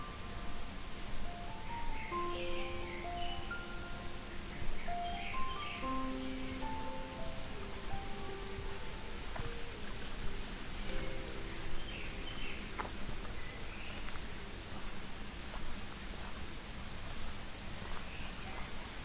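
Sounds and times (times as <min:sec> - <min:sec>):
bird calls: 0:00.0 - 0:14.9
faint sustained tones: 0:00.0 - 0:15.5
rushing mountain water on a pine trail: 0:00.0 - 0:19.0.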